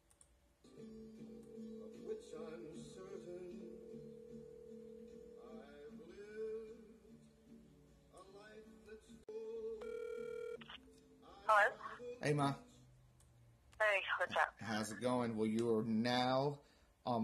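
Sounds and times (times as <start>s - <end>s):
speech: 2.2s - 3.8s, 11.5s - 12.6s, 14.2s - 17.2s
phone ringing over the line: 9.8s - 10.7s.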